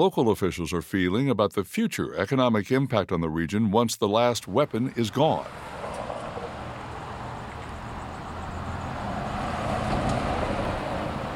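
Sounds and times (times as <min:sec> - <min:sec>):
speech: 0:00.0 - 0:05.8
cars and heavier vehicles passing: 0:04.6 - 0:11.3
downtown street traffic roar on a weekday morning: 0:04.6 - 0:11.3.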